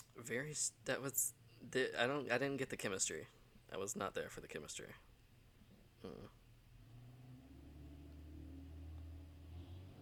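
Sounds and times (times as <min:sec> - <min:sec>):
speech: 0:00.2 - 0:05.1, 0:06.0 - 0:06.4
heavy truck engine passing outside: 0:06.7 - 0:10.0.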